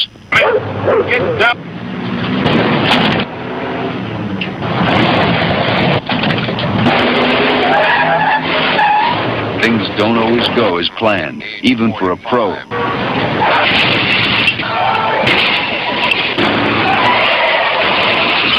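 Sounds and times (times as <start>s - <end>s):
roaring car engines in a car chase: 0.0s - 18.5s
tires screeching and skidding in a car chase: 0.6s - 10.8s, 12.7s - 18.5s
speech: 0.8s - 1.8s, 9.6s - 12.8s.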